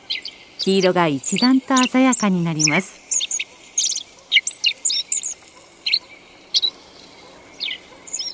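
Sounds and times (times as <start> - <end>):
black-faced bunting practising its seasonal song: 0.0 - 8.3
steady low hiss: 0.0 - 8.3
speech: 0.6 - 3.0.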